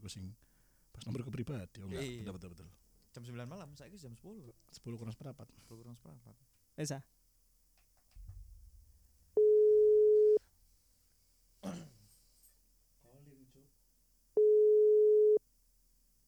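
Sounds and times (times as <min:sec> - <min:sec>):
speech: 0:00.0 - 0:07.2
WhatsApp outgoing call ringing tone: 0:09.4 - 0:10.4, 0:14.4 - 0:15.4
sharp throat-clearing: 0:11.6 - 0:12.1.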